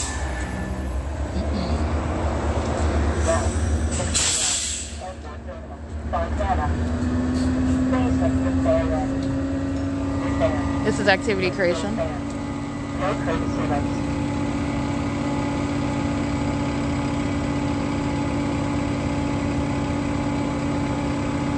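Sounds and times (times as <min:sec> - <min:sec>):
city bus heavy engine rumbling with rising whine: 0:00.0 - 0:21.5
street noise: 0:00.0 - 0:21.5
city bus air-brake hiss: 0:03.4 - 0:05.0
speech: 0:10.9 - 0:12.3, 0:13.0 - 0:14.0.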